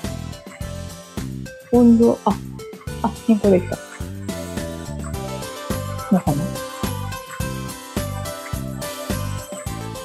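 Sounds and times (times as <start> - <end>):
upbeat background music with bass-heavy beat and bright tinkling melodic tones: 0.0 - 10.0
speech: 1.7 - 3.8, 6.1 - 6.7.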